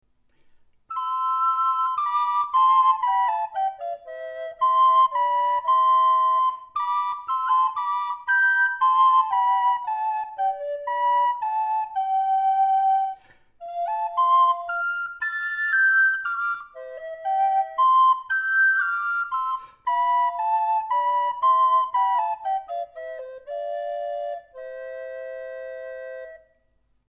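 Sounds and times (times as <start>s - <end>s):
recorder duet: 0.9s - 26.5s.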